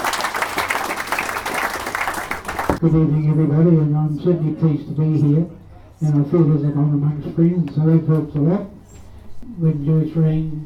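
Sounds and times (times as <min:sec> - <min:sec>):
audience applauding at a community gathering: 0:00.0 - 0:02.8
speech: 0:02.8 - 0:08.8, 0:09.5 - 0:10.6.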